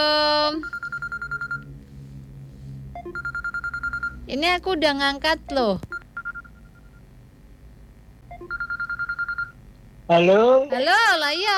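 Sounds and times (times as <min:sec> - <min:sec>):
electronic telephone ringing with warbling pulses: 0:00.6 - 0:01.7, 0:03.0 - 0:04.2, 0:05.9 - 0:07.0, 0:08.3 - 0:09.6
speech: 0:04.3 - 0:05.9, 0:10.1 - 0:11.5.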